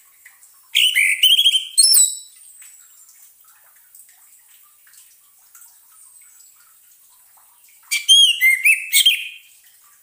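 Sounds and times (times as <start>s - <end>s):
orange-headed thrush singing sweet whistles and slurred notes: 0.8s - 2.3s, 7.9s - 9.5s.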